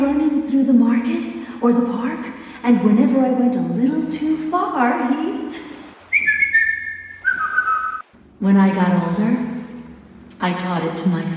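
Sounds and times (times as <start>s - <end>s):
speech: 0.0s - 5.6s, 8.4s - 9.5s, 10.4s - 11.3s
person whistling a family call signal: 6.1s - 8.0s.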